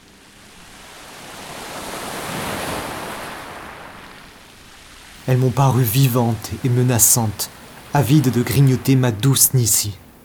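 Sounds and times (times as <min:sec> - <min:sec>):
waves breaking on the shore: 0:00.0 - 0:10.2
speech: 0:05.3 - 0:10.0.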